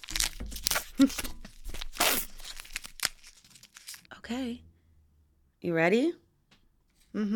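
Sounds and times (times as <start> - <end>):
dark chocolate peanut chew candy bar plastic wrapper being ripped open: 0.0 - 4.1
speech: 1.0 - 1.4, 4.3 - 4.7, 5.6 - 6.2, 7.1 - 7.3.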